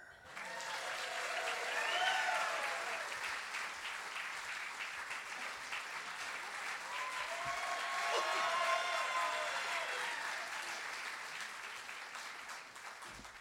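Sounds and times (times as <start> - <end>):
crowd applauding: 0.0 - 13.3
faint cheers and whoops: 0.2 - 3.3, 6.8 - 11.0.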